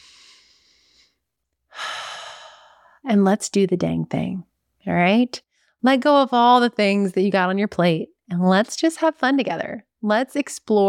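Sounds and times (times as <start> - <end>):
deep breath: 0.0 - 3.0
speech: 3.0 - 10.8.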